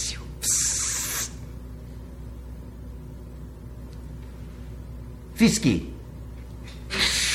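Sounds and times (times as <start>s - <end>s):
person imitating blowing up a balloon: 0.0s - 1.4s
faint low hum: 0.0s - 7.3s
speech: 5.4s - 6.0s.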